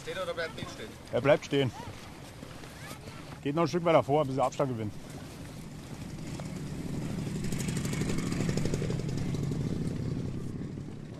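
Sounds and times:
speech: 0.0s - 2.0s, 3.4s - 5.1s
motorcycle engine rumbling on a street: 4.7s - 11.1s.

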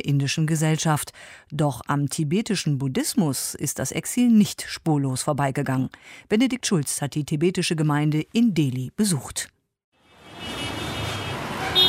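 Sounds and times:
speech: 0.0s - 9.6s
road traffic roaring along a busy street in northern Delhi: 10.0s - 11.8s.

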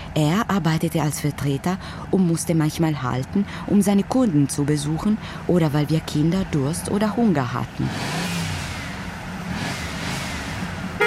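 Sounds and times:
speech: 0.2s - 8.2s
small car driving with engine humming and road noise: 6.0s - 11.0s.

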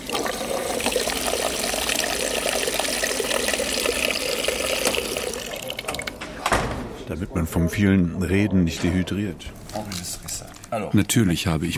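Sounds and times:
water pouring from a foot-operated water dispenser: 0.0s - 6.2s
speech: 7.1s - 9.6s, 10.7s - 11.7s.

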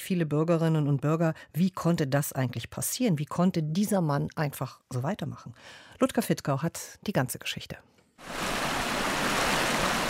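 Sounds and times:
speech: 0.1s - 8.6s
stream in the Taunus hills running high after heavy flow: 8.2s - 10.0s.

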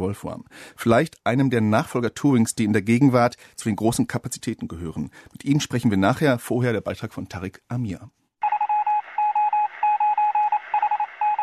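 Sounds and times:
speech: 0.0s - 8.2s
Morse code beeps over shortwave radio: 8.4s - 11.4s.

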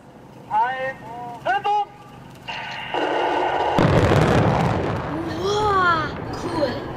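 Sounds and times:
speech: 0.8s - 1.5s
small electrically fired explosive charges detonating: 2.5s - 6.5s
large bridge collapsing with a broad roar and rumble: 2.6s - 6.9s.

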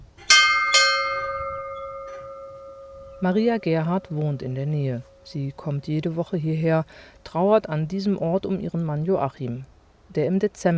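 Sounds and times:
ship's bell struck at a memorial Bridge of Remembrance: 0.2s - 6.2s
speech: 3.2s - 10.7s.

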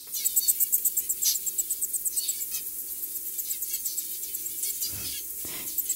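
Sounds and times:
zebra finch chirping to eggs: 0.0s - 5.9s.

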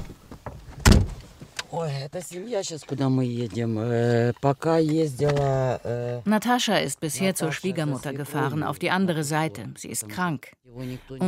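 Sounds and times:
car door shutting: 0.0s - 1.3s
speech: 1.7s - 11.2s.

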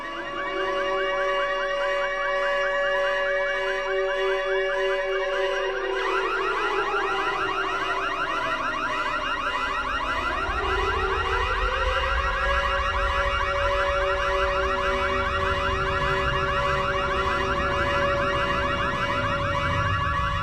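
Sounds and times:
overlapping wailing alarm sirens: 0.0s - 20.4s
steady electronic alarm tones: 9.8s - 20.4s.

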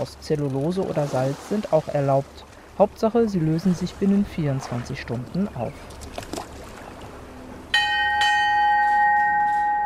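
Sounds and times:
speech: 0.0s - 6.3s
soft wind: 0.0s - 9.8s
water: 0.0s - 9.8s
ship's bell ringing: 7.7s - 9.8s.

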